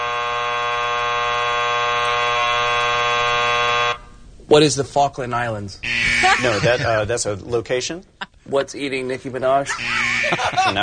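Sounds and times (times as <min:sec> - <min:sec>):
electronic game show buzzer held down: 0:00.0 - 0:04.1, 0:05.8 - 0:06.8, 0:09.7 - 0:10.6
speech: 0:04.5 - 0:10.8
laughter: 0:06.2 - 0:07.1, 0:09.5 - 0:10.8.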